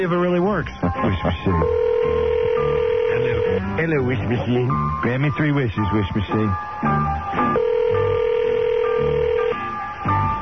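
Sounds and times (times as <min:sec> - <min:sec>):
speech: 0:00.0 - 0:07.8
faint phone line noise: 0:00.0 - 0:10.4
telephone ringback tone on an outgoing call: 0:01.3 - 0:04.1, 0:06.3 - 0:10.4.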